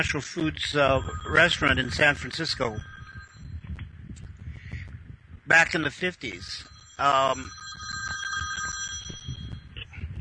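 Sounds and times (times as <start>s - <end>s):
speech: 0.0s - 2.9s, 5.5s - 7.6s
telephone bell ringing: 0.8s - 3.6s, 6.5s - 9.8s.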